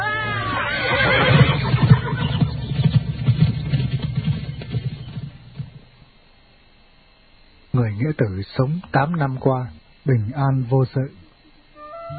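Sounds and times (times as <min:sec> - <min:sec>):
horse neighing: 0:00.0 - 0:02.8
heavy hoofbeats of a horse galloping away: 0:00.1 - 0:06.1
speech: 0:08.1 - 0:11.2.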